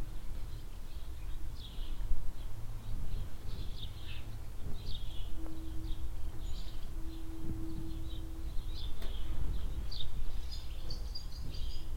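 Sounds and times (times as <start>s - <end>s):
mellow spring wind in a village barn yard: 0.0s - 11.9s
barn swallows chirping under a shed roof in a barn yard: 0.5s - 11.9s
low hum: 2.3s - 11.9s
tonal drone: 5.0s - 11.0s.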